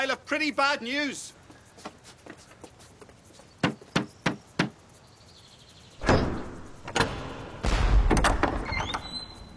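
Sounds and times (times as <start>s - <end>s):
speech: 0.1s - 2.0s
loud heavy banging on a temple door: 6.0s - 9.4s.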